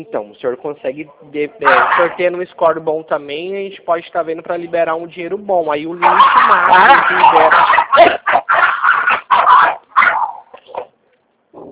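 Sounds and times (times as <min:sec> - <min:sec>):
speech: 0:00.0 - 0:08.2
small pitbull dog barking loudly in sharp yaps: 0:01.6 - 0:02.3, 0:06.0 - 0:10.8.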